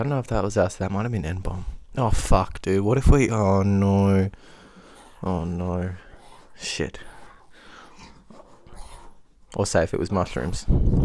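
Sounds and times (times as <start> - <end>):
speech: 0.0 - 4.6, 5.2 - 6.0, 6.6 - 7.1, 9.5 - 11.0
pet dog huffy breaths: 6.0 - 9.4.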